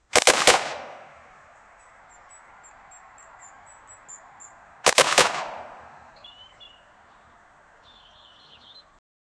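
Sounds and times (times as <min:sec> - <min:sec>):
80s common pistol gunshot: 0:00.1 - 0:01.2, 0:04.8 - 0:05.9.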